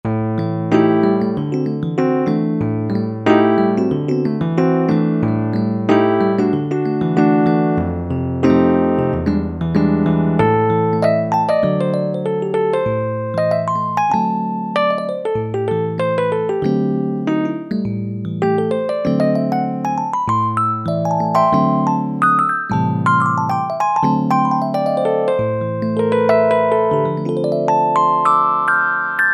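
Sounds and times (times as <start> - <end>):
electric piano from a Roland U-220 factory timbre: 0.1 - 29.3.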